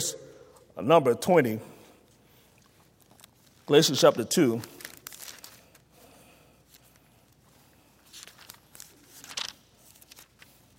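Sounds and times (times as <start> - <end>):
speech: 0.8 - 1.7, 3.7 - 4.8
Bible pages being turned: 2.6 - 6.0, 6.6 - 10.7.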